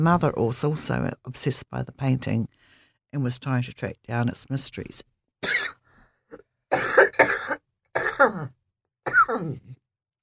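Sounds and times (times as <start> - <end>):
speech: 0.0 - 5.1, 8.2 - 8.6, 9.3 - 9.8
person coughing in rough harsh fits: 5.4 - 8.5, 9.1 - 9.8
person clearing throat: 5.4 - 9.8.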